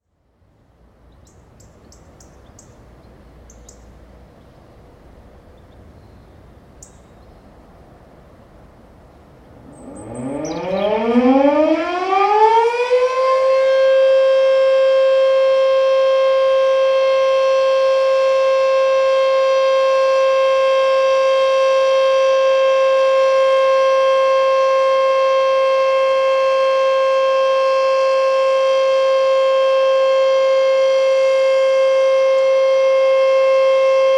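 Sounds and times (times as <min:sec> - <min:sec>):
ambient sounds in Calliano: 0:09.4 - 0:11.2
war remembrance siren in Calliano: 0:09.5 - 0:34.1.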